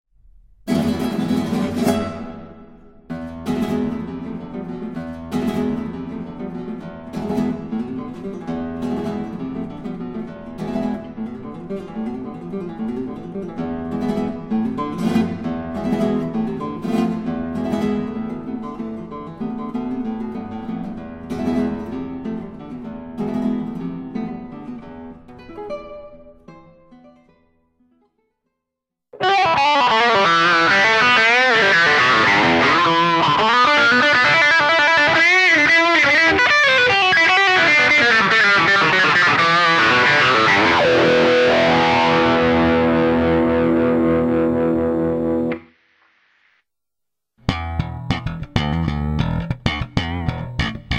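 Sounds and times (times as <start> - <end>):
acoustic guitar: 0.6 - 28.4, 29.2 - 45.7, 47.4 - 50.9
bass guitar: 29.2 - 45.6, 47.4 - 50.9.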